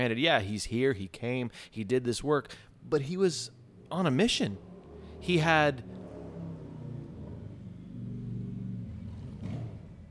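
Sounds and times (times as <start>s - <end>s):
speech: 0.0s - 6.0s
Harley-Davidson motorcycle engine rumbling as it passes by outside: 3.4s - 10.0s.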